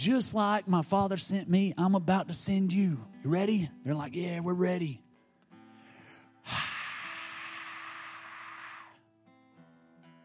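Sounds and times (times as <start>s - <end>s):
speech: 0.0s - 5.0s
person forcefully blowing out a long exhale: 5.8s - 9.0s.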